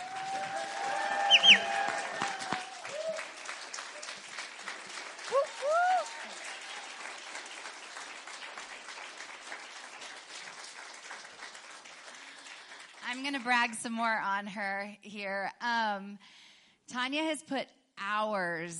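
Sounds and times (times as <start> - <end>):
loud whoops and cheers from the crowd: 0.0 - 3.5, 5.2 - 7.0
audience clapping in a room full of people: 0.0 - 13.8
speech: 13.3 - 18.7.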